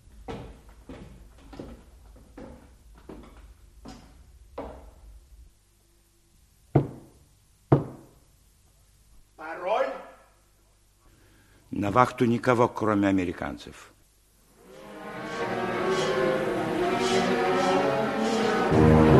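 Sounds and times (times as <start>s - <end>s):
steady footsteps: 0.0s - 5.2s, 14.7s - 19.1s
sharp knocks on a basement door: 6.7s - 8.1s
speech: 11.8s - 13.9s.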